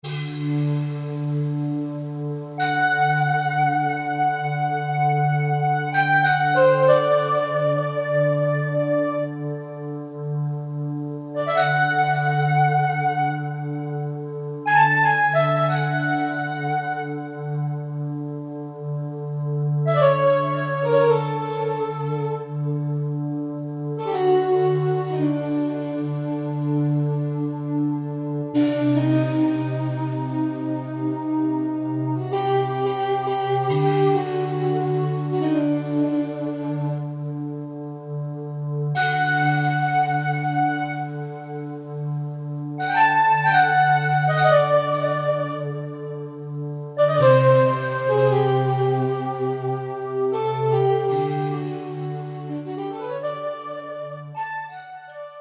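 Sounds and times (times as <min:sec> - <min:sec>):
hybrid breath synth patch on a Kurzweil K2000: 0:00.0 - 0:54.6.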